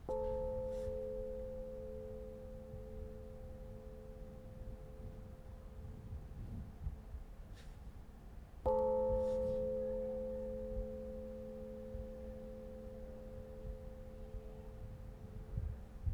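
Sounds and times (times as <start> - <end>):
industrial fog bell ringing in South India: 0.1 - 6.3, 8.7 - 16.1.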